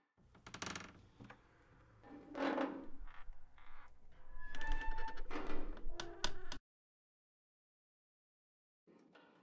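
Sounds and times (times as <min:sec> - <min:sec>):
roof railing creaking: 0:00.4 - 0:01.5, 0:02.3 - 0:06.6.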